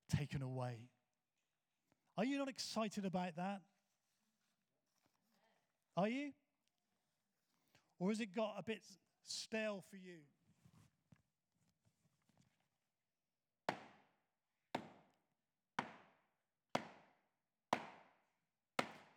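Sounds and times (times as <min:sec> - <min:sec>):
speech: 0:00.2 - 0:01.0, 0:02.2 - 0:03.7, 0:06.0 - 0:06.4, 0:08.0 - 0:10.4
hammer driving nails: 0:13.7 - 0:14.0, 0:14.8 - 0:15.2, 0:15.8 - 0:16.1, 0:16.8 - 0:17.1, 0:17.8 - 0:18.0, 0:18.8 - 0:19.1.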